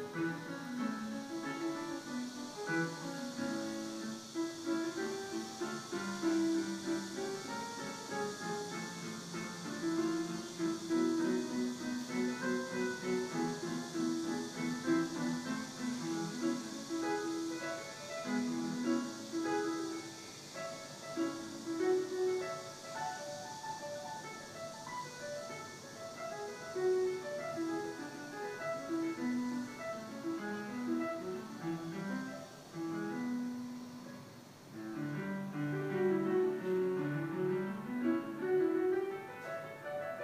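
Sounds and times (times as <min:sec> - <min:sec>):
constant faint hiss: 0:00.0 - 0:40.2
piano practice from the floor above: 0:00.0 - 0:40.2.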